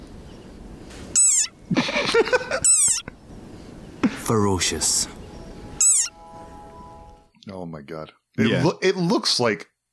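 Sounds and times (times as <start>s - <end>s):
desert rain frog shrill squeaky war cry: 1.1s - 1.6s, 2.5s - 3.1s, 5.8s - 6.2s
laughter: 1.7s - 2.7s
speech: 4.0s - 5.2s, 7.7s - 9.7s.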